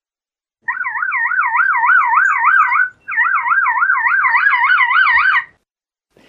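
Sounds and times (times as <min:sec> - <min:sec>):
lyrebird mimicking a car alarm with a warbling electronic wail: 0:00.7 - 0:05.5.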